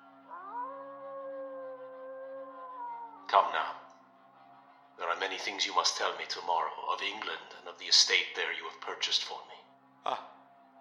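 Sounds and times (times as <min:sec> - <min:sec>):
wolves howling at night: 0:00.0 - 0:05.9
speech: 0:03.3 - 0:03.8, 0:05.0 - 0:10.3.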